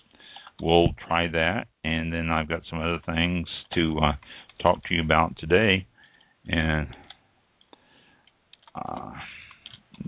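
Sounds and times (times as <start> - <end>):
speech: 0.6 - 7.0, 8.8 - 9.4
typing on a keyboard: 8.5 - 10.0.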